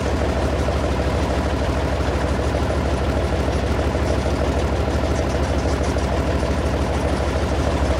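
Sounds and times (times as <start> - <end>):
tank engine running: 0.0 - 7.9.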